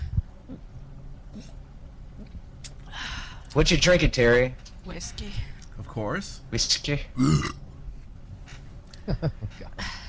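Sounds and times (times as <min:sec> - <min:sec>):
speech: 0:03.6 - 0:07.6, 0:09.1 - 0:09.9
loud guttural belch: 0:07.2 - 0:07.6.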